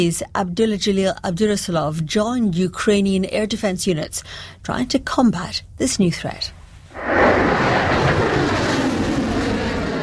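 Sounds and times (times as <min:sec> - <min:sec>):
speech: 0:00.0 - 0:07.5
missile launching into the sky with a roaring rush: 0:06.9 - 0:10.0.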